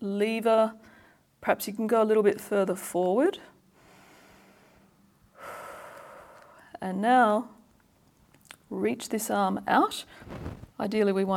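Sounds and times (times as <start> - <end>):
speech: 0.0 - 3.5, 6.8 - 7.6, 8.7 - 11.3
big breath in during a guided stretching exercise: 3.8 - 6.7.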